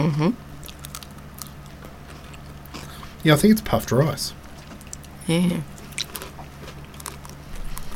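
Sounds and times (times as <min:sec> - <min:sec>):
speech: 0:00.0 - 0:00.5, 0:03.2 - 0:04.4, 0:05.3 - 0:05.7
person biting and chewing a hard crunchy wafer bar: 0:00.6 - 0:03.0, 0:05.8 - 0:07.9.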